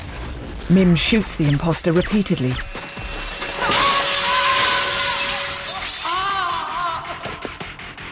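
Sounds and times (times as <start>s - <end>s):
speech: 0.7s - 2.7s
glass shattering outside a hotel: 2.7s - 7.8s
tinkling glass fragments: 2.8s - 7.7s.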